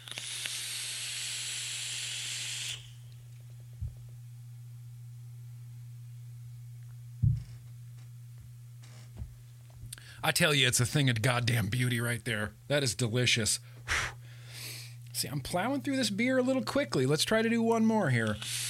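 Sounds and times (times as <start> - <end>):
e-cigarette with peanut butter white chocolate chip cookie e-liquid hissing: 0.0 - 3.2, 18.4 - 18.6
low hum: 0.8 - 18.6
soft thumps: 7.2 - 7.7
speech: 10.2 - 14.1, 15.2 - 18.6.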